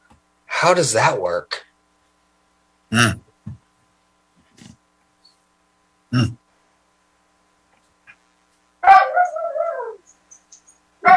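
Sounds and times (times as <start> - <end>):
speech: 0.6 - 1.6
dog yelping and whining: 8.8 - 10.1.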